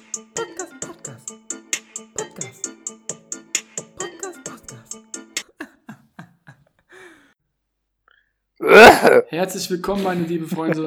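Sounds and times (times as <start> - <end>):
small coughs and throat-clearing: 8.6 - 9.3
speech: 8.7 - 10.8
laughter: 9.9 - 10.8.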